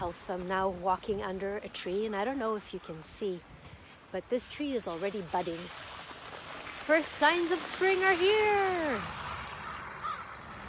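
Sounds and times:
speech: 0.0 - 3.5, 4.1 - 5.9, 6.9 - 9.2
crows cawing overhead: 9.6 - 10.4.

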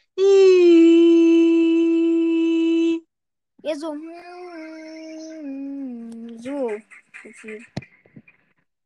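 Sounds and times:
person imitating a child humming: 0.0 - 3.1, 3.9 - 6.5
speech: 3.7 - 4.3, 6.8 - 7.9.

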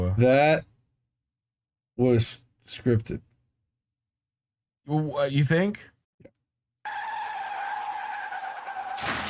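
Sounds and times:
speech: 0.2 - 0.7, 2.0 - 3.3, 4.9 - 5.9
car tire screeching in a skid: 6.8 - 9.2
car crash impact: 8.5 - 9.2.

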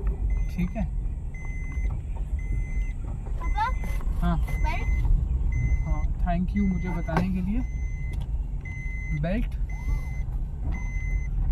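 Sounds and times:
steady low rumble of a car on the move: 0.0 - 11.5
speech: 0.6 - 1.0, 4.2 - 5.0, 5.9 - 7.8, 9.1 - 9.6.

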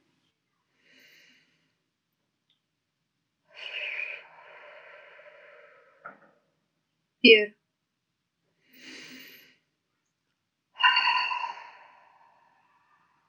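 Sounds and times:
deep breathing in through the nose and out through the mouth in a guided meditation: 3.6 - 6.5, 8.6 - 9.7, 10.8 - 13.2
speech: 7.2 - 7.6.

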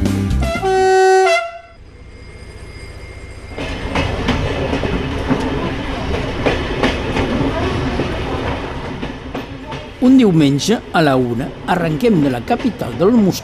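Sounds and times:
short tonal train horn blast: 0.3 - 1.8
train leaving the station with wheels clacking over the rails: 3.5 - 13.4
speech: 10.2 - 13.4.

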